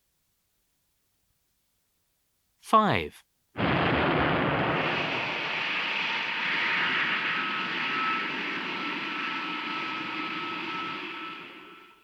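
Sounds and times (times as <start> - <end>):
speech: 2.7 - 3.3
loud steady rocket roar with faint whine: 3.6 - 12.0.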